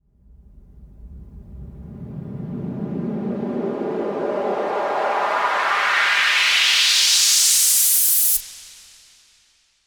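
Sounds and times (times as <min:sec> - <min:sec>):
riser whoosh going up: 0:00.6 - 0:07.1.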